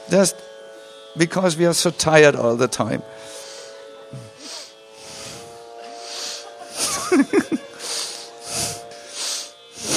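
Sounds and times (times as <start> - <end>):
speech: 0.1 - 0.6, 1.2 - 3.4, 7.2 - 7.7
deep fast breathing exercise: 3.1 - 6.5, 7.7 - 9.9
laughter: 6.1 - 8.8.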